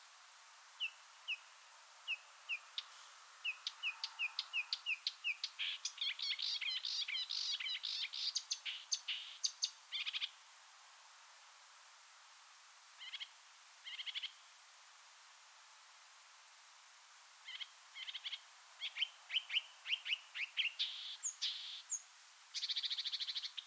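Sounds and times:
marsh warbler song: 0.8 - 10.4, 17.5 - 23.6.

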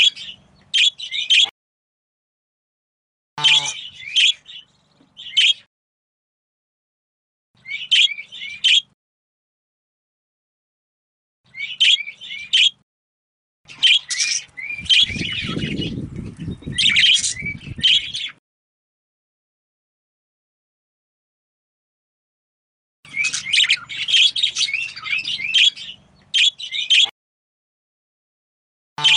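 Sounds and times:
female budgerigar calling in harsh chirping bursts: 0.0 - 1.5, 3.4 - 4.6, 5.2 - 5.7, 7.6 - 8.9, 11.6 - 12.8, 13.7 - 16.0, 16.7 - 18.3, 23.1 - 27.1.

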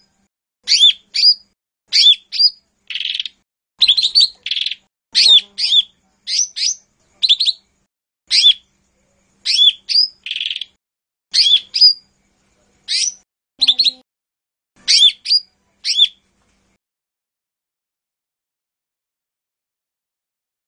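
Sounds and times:
Lesser green leafbird uttering high whistled chirps and downslurred flicks: 0.6 - 7.7, 8.3 - 8.7, 9.4 - 12.1, 12.9 - 14.0, 14.8 - 16.2.

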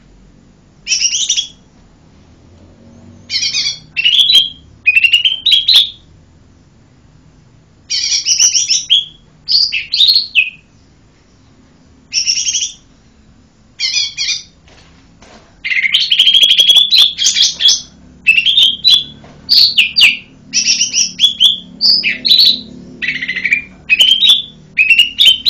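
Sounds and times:
Lesser green leafbird singing: 0.8 - 1.7, 3.0 - 6.1, 7.9 - 13.0, 13.8 - 14.6, 15.6 - 25.4.

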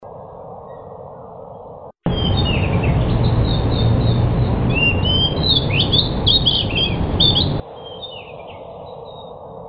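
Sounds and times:
dull rumbling background: 2.0 - 7.6
Pied bush chat chirping and twittering: 2.1 - 8.3.

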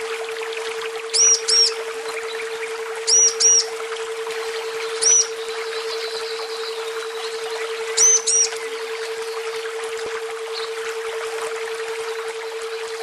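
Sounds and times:
nature sounds: 0.0 - 13.0
female bird calls: 1.1 - 2.4, 3.1 - 3.7, 4.9 - 8.8.

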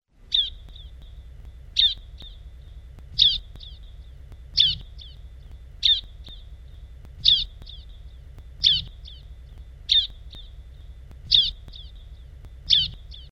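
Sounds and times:
ciblek bird chirping: 0.2 - 13.2.

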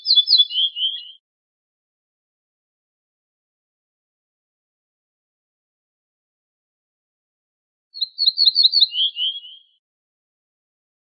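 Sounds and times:
ortolan bunting song of high clear notes: 0.0 - 1.2, 8.0 - 9.8.

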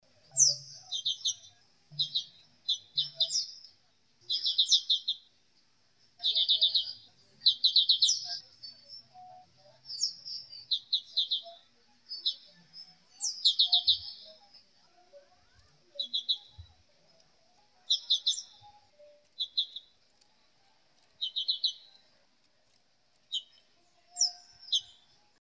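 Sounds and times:
black-capped white-eye singing: 0.3 - 3.7, 4.3 - 5.3, 6.2 - 8.9, 9.9 - 14.4, 16.0 - 16.7, 17.8 - 20.0, 21.2 - 22.1, 23.3 - 25.2.

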